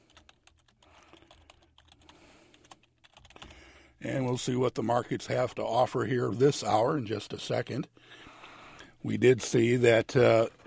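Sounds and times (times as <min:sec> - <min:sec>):
rapid keystrokes on a computer keyboard typing a password: 0:00.0 - 0:03.7
speech: 0:04.0 - 0:08.2, 0:09.0 - 0:10.6.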